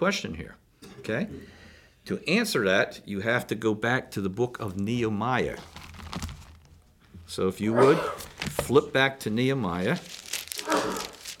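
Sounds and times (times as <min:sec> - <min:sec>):
speech: 0:00.0 - 0:05.8, 0:07.3 - 0:10.2
person sneezing: 0:07.8 - 0:08.3, 0:10.6 - 0:11.2.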